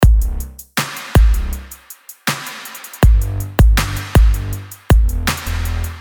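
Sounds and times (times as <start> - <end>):
bass: 0.0 - 1.8, 3.0 - 5.9
beat: 0.0 - 5.9.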